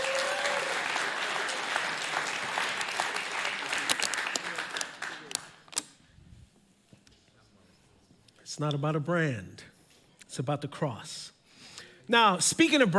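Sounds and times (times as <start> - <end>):
crowd applauding: 0.0 - 5.7
scattered individual claps: 0.0 - 5.8
speech: 8.6 - 9.7, 10.4 - 11.4, 12.1 - 12.9.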